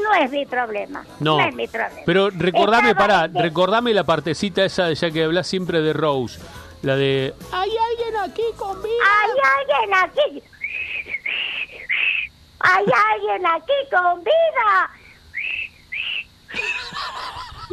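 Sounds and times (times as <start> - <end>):
speech: 0.1 - 10.5, 12.6 - 15.0
voice imitating a feeble breathy whistle: 10.6 - 12.3
laughter: 16.5 - 17.7.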